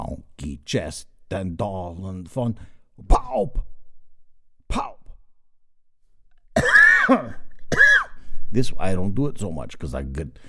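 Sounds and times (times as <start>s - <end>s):
speech: 0.4s - 3.7s, 7.1s - 7.4s, 8.5s - 10.4s
person coughing: 6.6s - 8.3s.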